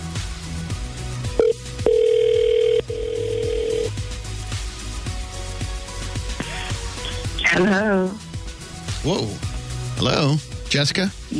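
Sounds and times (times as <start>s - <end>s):
quieter rhythmic music bed: 0.0s - 11.3s
outgoing telephone call beep and ringback tones: 1.4s - 3.9s
speech: 9.1s - 9.4s, 10.0s - 11.3s.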